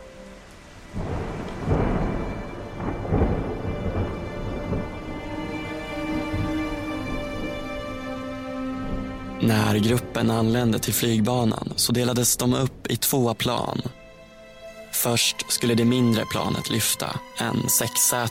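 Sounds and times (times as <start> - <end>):
heavy rain in a thunderstorm: 0.0 - 18.3
deep thunder rumbling and cracking in a thunderstorm: 0.9 - 8.0, 8.8 - 14.0
speech: 9.4 - 14.0, 15.0 - 18.3.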